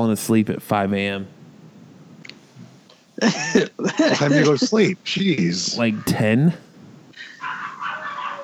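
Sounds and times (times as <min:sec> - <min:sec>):
speech: 0:00.0 - 0:01.4, 0:03.2 - 0:06.6
laughter: 0:03.2 - 0:06.6, 0:07.2 - 0:08.4
dogs barking and yelping in a frantic fight at a house: 0:07.2 - 0:08.4.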